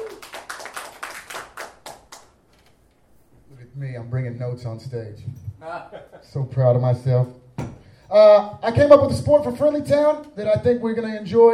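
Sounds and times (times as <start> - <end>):
audience applause: 0.0 - 2.4
speech: 3.9 - 7.4, 8.1 - 11.5.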